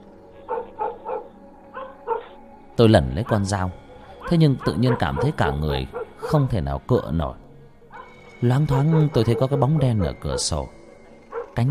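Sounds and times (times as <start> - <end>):
dog barking fiercely in short jerky bursts: 0.4 - 2.4, 4.2 - 6.4, 7.9 - 9.6, 11.3 - 11.6
speech: 2.8 - 7.4, 8.4 - 10.8.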